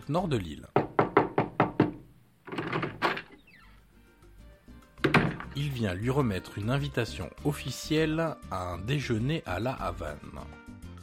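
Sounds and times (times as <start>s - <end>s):
speech: 0.1s - 0.8s, 5.6s - 10.6s
police officer knocking on a hotel room door in Varadero Cuba: 0.8s - 3.0s, 5.0s - 5.6s.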